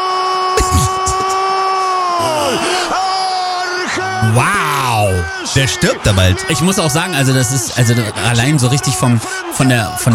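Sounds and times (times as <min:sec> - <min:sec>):
man screaming: 0:00.0 - 0:06.5
speech: 0:04.2 - 0:10.1.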